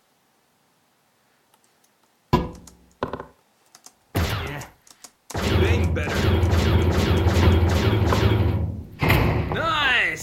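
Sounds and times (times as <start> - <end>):
person speaking: 4.3 - 7.3, 9.5 - 10.2
door being punched: 5.4 - 9.7
door crashing down: 7.4 - 9.8.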